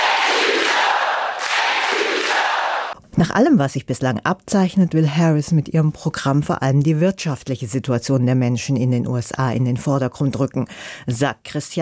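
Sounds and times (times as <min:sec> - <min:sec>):
large audience at a speech chanting in chorus: 0:00.0 - 0:03.0
speech: 0:03.2 - 0:11.8.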